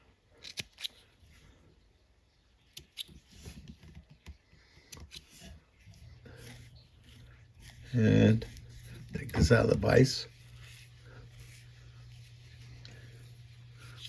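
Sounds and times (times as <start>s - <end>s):
scissors snipping a thread tail at a fly-tying vise: 0.4s - 1.0s, 2.7s - 5.5s
soft handling and rustling: 2.5s - 14.0s
speech: 7.9s - 8.5s, 9.4s - 10.3s.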